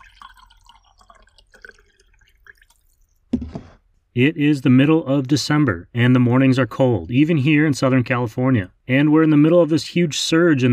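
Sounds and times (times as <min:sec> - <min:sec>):
coffee pouring into a cup: 0:00.0 - 0:03.7
short clunk: 0:03.3 - 0:03.8
speech: 0:04.2 - 0:10.7.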